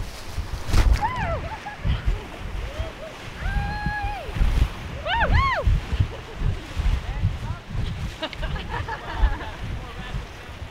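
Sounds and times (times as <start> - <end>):
river rapids churning around a raft: 0.0 - 10.6
wind buffeting: 0.0 - 10.6
several people letting out excited whoops and shouts: 1.0 - 5.8
laughter: 1.2 - 3.2, 5.9 - 6.9, 8.0 - 9.8.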